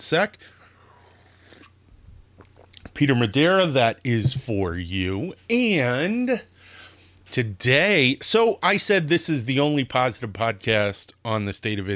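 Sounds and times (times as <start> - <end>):
speech: 0.0 - 0.6, 2.9 - 6.5, 7.3 - 11.9
person sipping hot coffee: 0.9 - 2.9.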